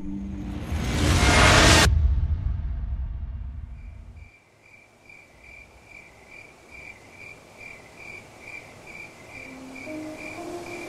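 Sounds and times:
loud rumble: 0:00.3 - 0:04.2
crickets chirping: 0:03.8 - 0:10.8.

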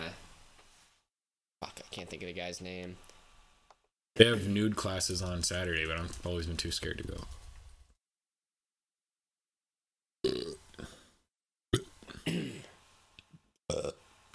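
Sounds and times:
speech: 0:02.0 - 0:03.1, 0:04.2 - 0:07.4
loud burps: 0:10.2 - 0:12.8, 0:13.7 - 0:14.1.

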